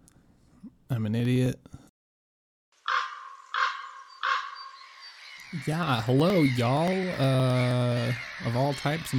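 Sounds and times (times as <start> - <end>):
speech: 0.9 - 1.8, 5.6 - 9.1
crow cawing: 2.8 - 9.1.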